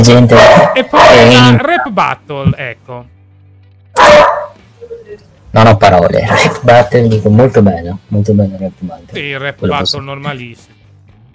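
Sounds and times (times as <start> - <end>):
speech: 0.0 - 3.2, 4.0 - 4.3, 5.0 - 10.8
dog barking: 0.3 - 1.4, 4.0 - 4.6, 6.3 - 6.9.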